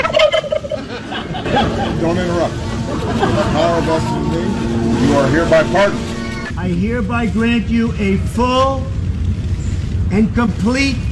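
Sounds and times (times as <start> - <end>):
turkey gobbling on the White House South Lawn: 0.0 - 1.9
laughter: 0.0 - 6.1
noisy outdoor background on the White House South Lawn: 0.0 - 11.1
speech: 2.0 - 8.9, 10.1 - 11.1.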